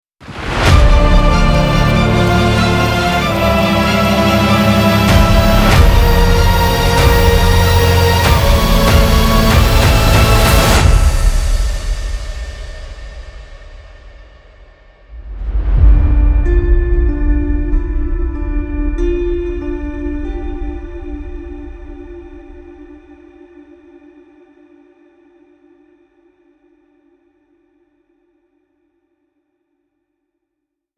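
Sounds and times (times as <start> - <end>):
trailer hybrid sound: 0.2 - 23.3.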